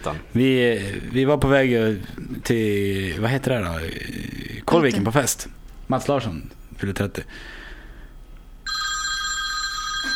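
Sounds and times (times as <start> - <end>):
speech: 0.0 - 7.6
telephone ringing with a bright electronic trill: 8.6 - 10.1.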